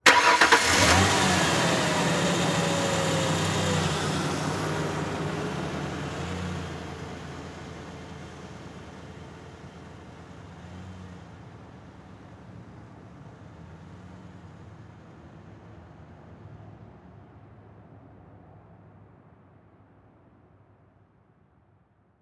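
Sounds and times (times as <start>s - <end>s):
Ford Ranger truck starting and driving off slowly: 0.0s - 10.0s.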